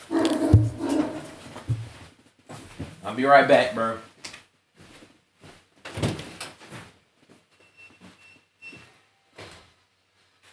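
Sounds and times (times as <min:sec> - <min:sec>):
dog barking: 0:00.0 - 0:01.4
low thumps: 0:00.0 - 0:02.0
speech: 0:03.1 - 0:04.1.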